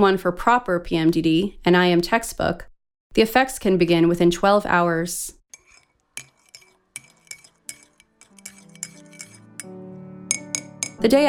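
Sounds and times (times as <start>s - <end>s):
speech: 0.0s - 5.4s, 11.0s - 11.2s
spoon clinking against a ceramic cup while stirring tea in a kitchen: 5.6s - 9.7s, 10.3s - 11.0s.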